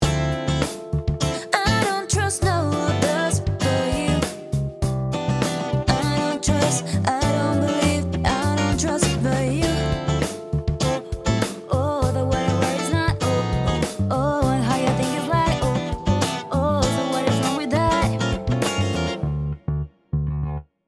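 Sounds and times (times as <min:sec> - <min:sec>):
Variax guitar: 0:00.0 - 0:20.6.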